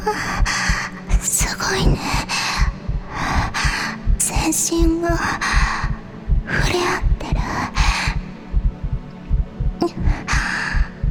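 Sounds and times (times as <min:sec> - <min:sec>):
heartbeat thumping in low double pulses: 0:00.0 - 0:11.0
speech: 0:00.1 - 0:00.4, 0:04.6 - 0:05.6.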